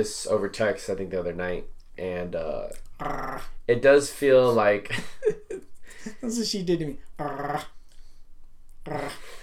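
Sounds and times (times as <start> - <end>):
speech: 0.0 - 5.4, 6.0 - 7.8, 8.8 - 9.3
dog growling: 2.9 - 3.6, 7.2 - 7.8.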